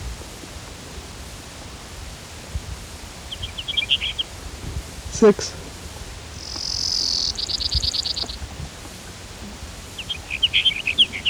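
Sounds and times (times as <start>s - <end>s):
faint hiss: 0.0s - 11.2s
Brewer's sparrow singing: 3.1s - 11.2s
speech: 5.2s - 5.6s.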